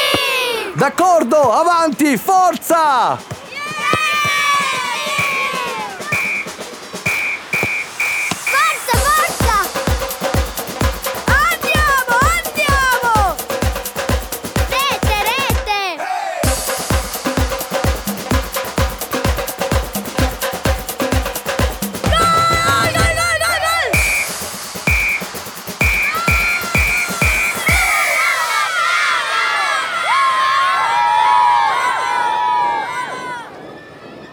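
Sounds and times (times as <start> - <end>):
children shouting and cheering while playing football: 0.0 - 6.8, 8.3 - 10.1, 11.2 - 13.6, 14.5 - 16.7, 22.0 - 24.4, 25.8 - 34.3
steady thumping rhythmic beat: 0.0 - 28.5
speech: 0.8 - 3.9.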